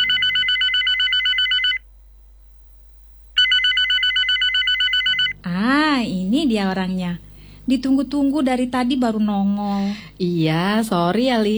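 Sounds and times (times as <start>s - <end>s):
telephone ringing with fast warbling trill: 0.0s - 1.9s, 3.4s - 5.5s
speech: 6.5s - 11.5s.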